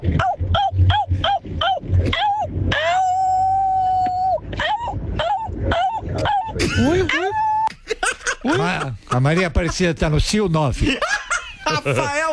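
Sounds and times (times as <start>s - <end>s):
person imitating a howling dog: 0.2s - 7.7s
laughter: 0.6s - 12.3s
speech: 9.2s - 11.2s, 11.8s - 12.2s.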